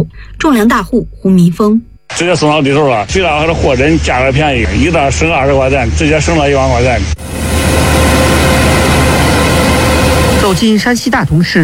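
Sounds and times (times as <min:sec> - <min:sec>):
speech: 0:00.4 - 0:08.3, 0:10.5 - 0:11.6
combine harvester working at full power harvesting corn in a field in Datong, Shanxi: 0:03.4 - 0:10.9.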